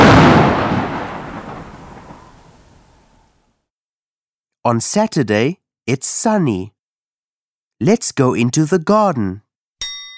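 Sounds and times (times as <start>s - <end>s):
loud thunder crash in a thunderstorm: 0.0s - 3.5s
speech: 4.7s - 6.8s, 7.8s - 9.4s.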